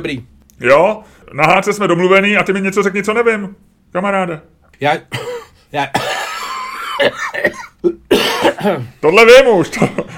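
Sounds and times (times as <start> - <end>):
speech: 0.0 - 6.2, 7.0 - 10.1
person coughing: 5.1 - 8.9.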